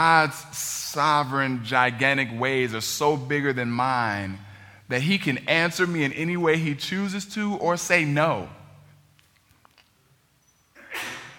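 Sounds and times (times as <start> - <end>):
speech: 0.0 - 8.6
person sneezing: 10.8 - 11.3.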